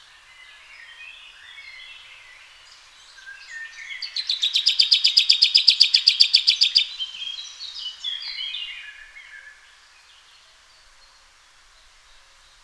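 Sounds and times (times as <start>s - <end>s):
common chaffinch Fringilla coelebs singing: 0.4s - 10.3s.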